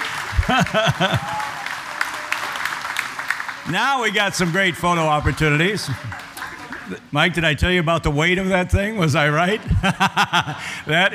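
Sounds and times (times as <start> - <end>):
laughter: 0.0 - 2.4, 5.2 - 7.1, 9.3 - 11.1
loud whooping cheer: 0.0 - 3.7
audience applauding: 0.0 - 7.1
speech: 0.5 - 1.4, 3.6 - 6.3, 6.9 - 11.1.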